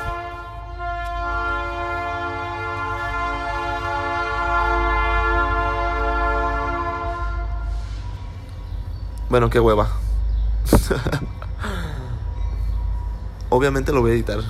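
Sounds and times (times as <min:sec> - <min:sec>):
train horn blaring: 0:00.0 - 0:08.4
deep rumble of a passing train: 0:00.0 - 0:14.4
speech: 0:09.3 - 0:10.0, 0:10.9 - 0:11.8, 0:13.6 - 0:14.4
laughter: 0:10.6 - 0:12.2.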